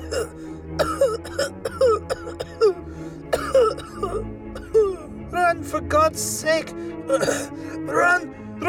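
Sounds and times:
person coughing and gagging up grass: 0.0 - 5.1, 7.1 - 8.1
strained throat-clearing: 0.0 - 5.1, 7.1 - 7.6
speech: 6.2 - 7.6.

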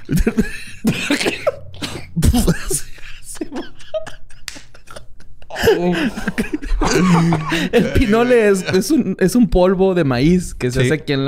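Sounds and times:
harsh dry hacking coughing: 0.0 - 3.3, 6.8 - 8.9
laughter: 0.0 - 9.2
speech: 0.1 - 0.6, 7.7 - 11.2.

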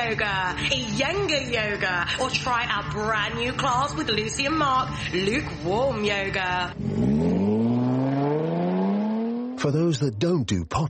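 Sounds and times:
speech: 0.0 - 7.3, 9.6 - 10.8
Jaguar E-Pace compact sports SUV engine revving: 6.4 - 10.1.

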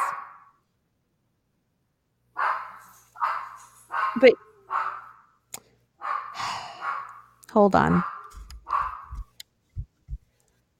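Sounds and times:
dogs barking: 0.0 - 0.5, 2.4 - 5.3, 6.0 - 9.3
speech: 4.2 - 4.5, 7.6 - 8.1.

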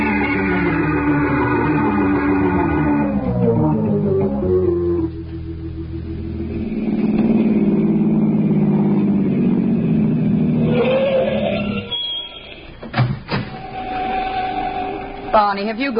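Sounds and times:
car engine rumbling and revving: 0.0 - 11.9
low hum: 0.0 - 15.9
speech: 15.5 - 15.9.

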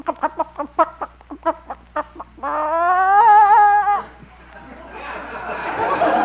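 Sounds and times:
hen clucking as someone reaches under her for an egg: 0.0 - 4.2
laughter: 0.1 - 6.2.

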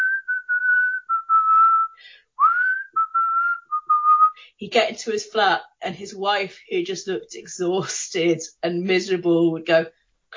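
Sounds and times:
whistled melody from the opening of a late-1990s song: 0.0 - 4.4
speech: 4.6 - 10.3.

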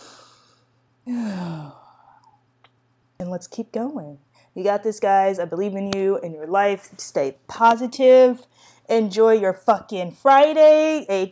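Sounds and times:
deep breathy sigh: 0.0 - 2.2
faint steady hum: 0.0 - 11.3
speech: 1.0 - 1.4, 3.2 - 11.3.

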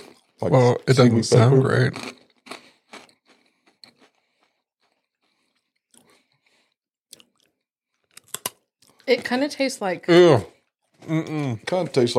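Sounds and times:
speech: 0.4 - 2.2, 9.1 - 12.1
chewing a crunchy Japanese seaweed rice cracker: 1.8 - 9.1.

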